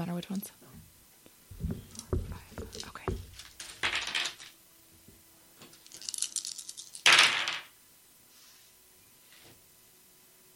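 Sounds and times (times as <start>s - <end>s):
speech: 0.2s - 0.8s
five dice rattling onto a hard surface: 1.8s - 4.6s, 5.7s - 7.7s.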